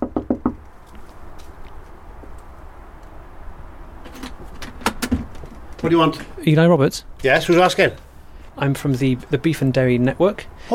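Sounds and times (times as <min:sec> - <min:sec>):
knocking on a house front door: 0:00.0 - 0:00.6
speech: 0:05.8 - 0:10.7.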